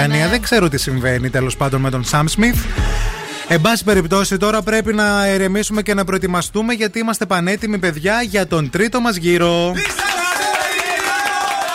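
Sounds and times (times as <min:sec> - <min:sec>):
speech: 0:00.0 - 0:10.1
crowd applause: 0:09.8 - 0:11.7.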